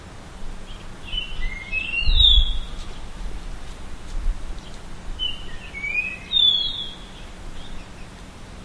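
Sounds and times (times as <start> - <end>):
Japanese grosbeak song: 0.6 - 3.2, 4.5 - 8.6.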